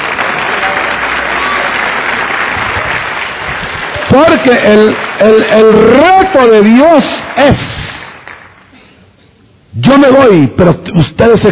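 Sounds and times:
congregation applauding during a church service: 0:00.0 - 0:08.8
speech: 0:04.2 - 0:07.8, 0:09.8 - 0:11.5.

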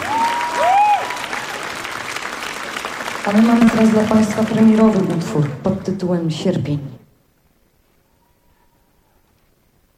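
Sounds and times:
audience applause: 0:00.0 - 0:05.7
speech: 0:03.2 - 0:07.0.

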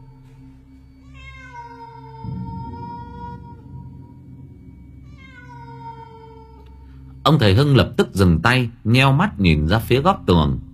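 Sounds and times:
low rumbling drone: 0:00.0 - 0:10.7
cat meowing: 0:01.0 - 0:04.4, 0:05.0 - 0:06.9
speech: 0:07.3 - 0:10.7.

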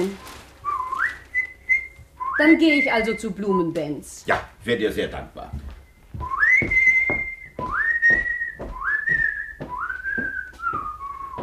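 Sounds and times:
man whistling an opera tune outdoors: 0:00.6 - 0:03.2, 0:05.9 - 0:11.4
speech: 0:02.4 - 0:05.7, 0:06.6 - 0:06.8.

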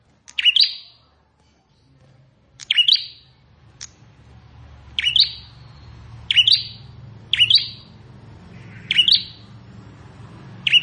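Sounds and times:
low background hum: 0:00.0 - 0:10.8
Plain prinia song of buzzy chirps: 0:00.3 - 0:01.1, 0:02.6 - 0:03.4, 0:04.9 - 0:09.6, 0:10.6 - 0:10.8.

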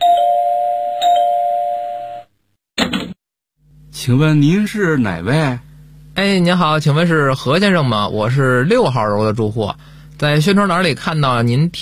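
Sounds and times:
home electronic doorbell chiming: 0:00.0 - 0:02.3
speech: 0:04.0 - 0:11.7.

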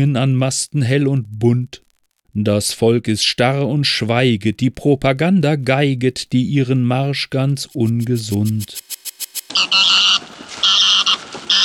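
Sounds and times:
speech: 0:00.0 - 0:09.0, 0:09.6 - 0:10.2
Egyptian goose cackling: 0:09.6 - 0:11.6.

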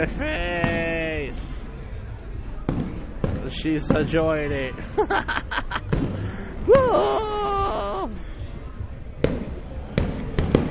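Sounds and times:
laughter: 0:00.0 - 0:00.4, 0:04.8 - 0:08.2
speech: 0:00.0 - 0:00.8, 0:03.5 - 0:05.7, 0:06.6 - 0:08.2
fireworks bangs and crackles: 0:00.0 - 0:01.2, 0:02.6 - 0:04.9, 0:05.7 - 0:06.6, 0:09.2 - 0:10.6.

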